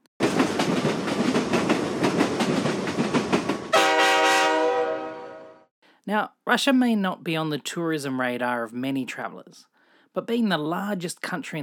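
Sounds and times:
train on the Trans-Mongolian Railway in Russia clattering on tracks: 0.2s - 3.9s
train horn blaring: 3.7s - 5.7s
speech: 6.1s - 11.6s.

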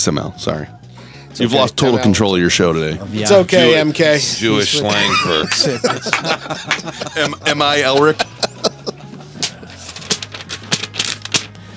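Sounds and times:
speech: 0.0s - 8.3s
laughter: 3.4s - 10.1s
sheet of paper being crunched up: 9.4s - 11.7s.

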